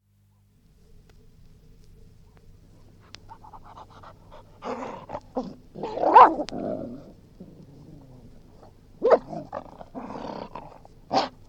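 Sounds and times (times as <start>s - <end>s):
English springer spaniel breathing and panting: 2.8s - 5.4s
English springer spaniel barking: 5.8s - 6.5s, 9.0s - 9.6s, 11.1s - 11.4s.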